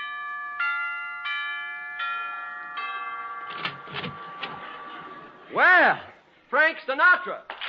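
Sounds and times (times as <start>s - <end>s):
doorbell chime ringing: 0.0s - 5.4s
speech: 5.5s - 7.5s.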